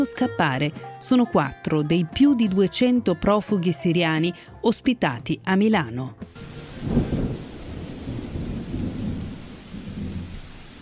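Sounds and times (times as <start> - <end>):
speech: 0.0 - 7.0
deep thunder rumble: 6.4 - 10.8
heavy rain over flooded streets on the outskirts of Milan: 6.4 - 10.8.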